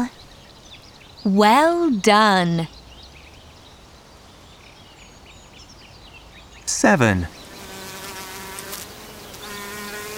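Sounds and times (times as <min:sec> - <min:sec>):
speech: 0:01.2 - 0:02.8, 0:06.8 - 0:07.4
bee buzzing: 0:07.6 - 0:10.1.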